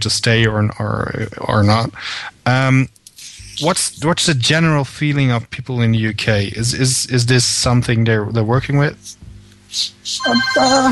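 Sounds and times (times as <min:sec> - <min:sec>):
speech: 0:00.0 - 0:03.0, 0:03.6 - 0:10.9
bright melodic phone ringtone of an incoming call: 0:10.2 - 0:10.9.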